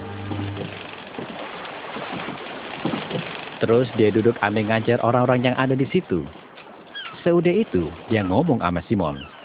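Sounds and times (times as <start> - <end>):
low hum: 0.0 - 1.1
lake water washing and splashing around a boat hull: 0.0 - 9.4
speech: 3.6 - 6.4, 7.2 - 9.3.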